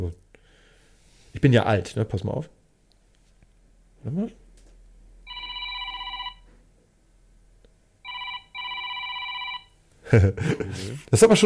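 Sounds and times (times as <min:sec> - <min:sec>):
speech: 0:00.0 - 0:00.2, 0:01.3 - 0:02.6, 0:04.0 - 0:04.4, 0:10.1 - 0:11.4
mobile phone classic telephone-style ringtone: 0:05.3 - 0:06.4, 0:08.0 - 0:09.8.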